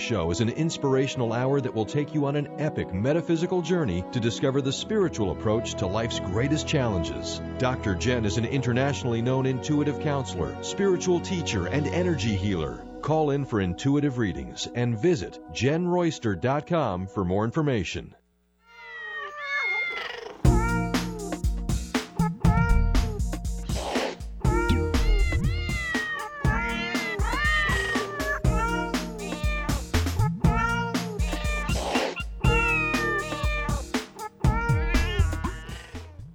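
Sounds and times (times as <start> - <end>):
speech: 0.1 - 18.2
sampled cat meows strung into a bouncy Christmas song melody: 18.7 - 21.3, 22.2 - 23.2, 24.5 - 36.0
steady instrumental backing music: 20.5 - 36.3.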